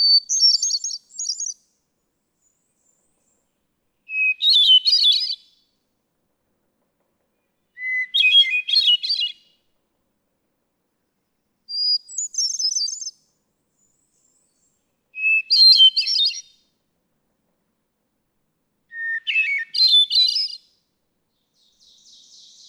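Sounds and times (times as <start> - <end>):
hermit thrush song: 0.0 - 1.6, 4.1 - 5.6, 7.8 - 9.5, 11.7 - 13.2, 13.8 - 16.6, 18.9 - 20.7, 21.6 - 22.6.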